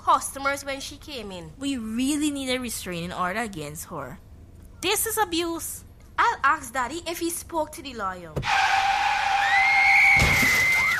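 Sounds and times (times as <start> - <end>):
speech: 0.1 - 8.7
car tires skidding in a high-pitched screech: 8.4 - 9.8.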